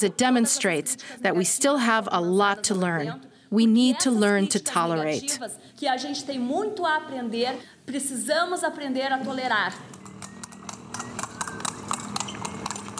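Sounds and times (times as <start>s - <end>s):
speech: 0.0s - 10.0s
horse and buggy hooves clip-clopping on hard ground: 9.8s - 12.9s.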